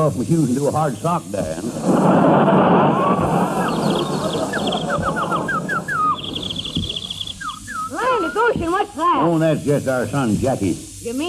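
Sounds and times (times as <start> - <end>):
speech: 0.0 - 4.2, 8.4 - 11.2
steady hiss: 0.0 - 11.2
laughter: 1.4 - 7.1
boy imitating a bird call with whistled chirps and trill: 3.1 - 8.7.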